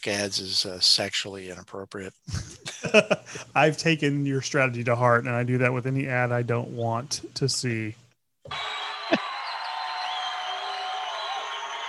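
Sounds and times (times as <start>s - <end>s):
speech: 0.0s - 8.7s
laughter: 2.3s - 3.4s
recorded applause and crowd noise from a comedy record: 8.5s - 11.8s.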